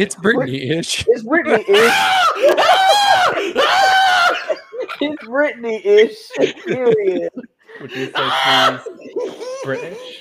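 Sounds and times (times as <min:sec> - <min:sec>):
speech: 0:00.0 - 0:04.0, 0:05.0 - 0:10.1
excited vocal sounds almost like laughter: 0:00.3 - 0:10.1
laughter: 0:01.0 - 0:10.1
loud piercing scream: 0:01.7 - 0:04.6, 0:08.1 - 0:08.9.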